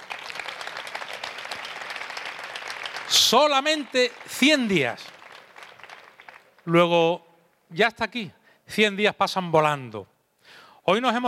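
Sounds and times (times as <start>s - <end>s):
crowd applause at a concert: 0.0s - 6.6s
speech: 3.1s - 5.2s, 6.6s - 10.1s, 10.9s - 11.2s.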